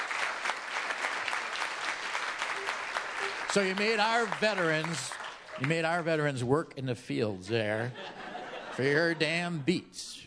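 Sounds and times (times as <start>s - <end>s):
room full of people clapping: 0.0s - 6.5s
laughter: 2.6s - 4.4s, 7.5s - 9.7s
speech: 3.6s - 8.2s, 8.8s - 10.2s.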